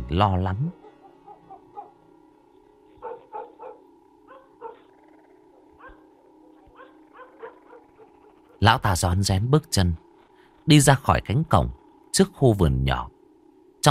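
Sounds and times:
low steady hum: 0:00.0 - 0:13.8
speech: 0:00.1 - 0:00.8, 0:08.6 - 0:10.0, 0:10.6 - 0:13.1
dogs barking in the night: 0:00.7 - 0:02.1, 0:02.9 - 0:08.6.

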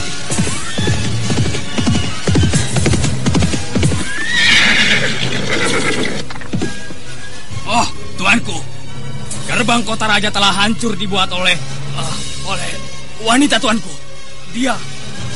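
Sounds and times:
horses galloping: 0:00.3 - 0:07.0
loud horse whinny: 0:04.0 - 0:06.7
speech: 0:09.7 - 0:11.8, 0:12.5 - 0:15.3.

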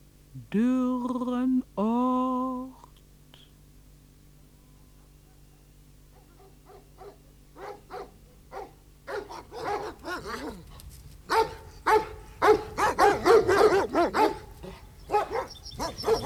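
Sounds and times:
speech: 0:00.5 - 0:01.8
dog barking: 0:05.0 - 0:16.2.

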